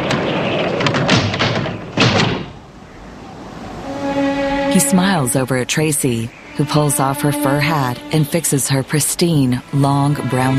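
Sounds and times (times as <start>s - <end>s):
doors banging and rattling in gusting wind: 0.0s - 2.7s
gusting wind: 0.0s - 10.5s
speech: 4.7s - 10.5s.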